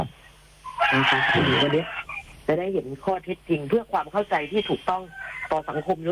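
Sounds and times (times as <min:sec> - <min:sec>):
rooster crowing: 0:00.7 - 0:02.3, 0:04.9 - 0:06.0
speech: 0:00.9 - 0:06.0.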